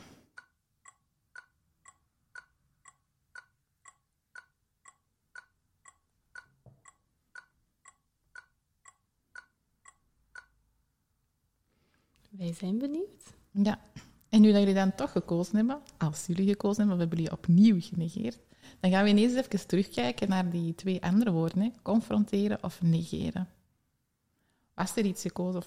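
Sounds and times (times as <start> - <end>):
clock ticking: 0.3 - 10.8
speech: 12.4 - 23.6, 24.8 - 25.6.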